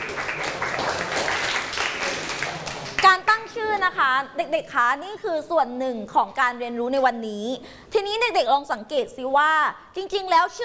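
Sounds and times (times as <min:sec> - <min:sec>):
children in a classroom clapping for a classmate: 0:00.0 - 0:03.1
speech: 0:03.9 - 0:10.6.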